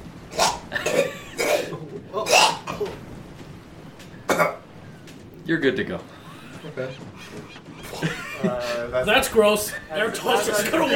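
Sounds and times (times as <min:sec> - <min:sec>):
harsh wet hacking coughs bringing up phlegm: 0:00.4 - 0:02.9, 0:04.3 - 0:04.6
speech: 0:05.5 - 0:10.9
laughter: 0:06.0 - 0:10.9.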